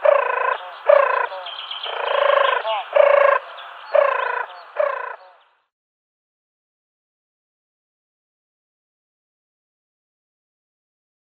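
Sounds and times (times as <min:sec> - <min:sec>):
male European turtle dove display purring: 0:00.0 - 0:05.4.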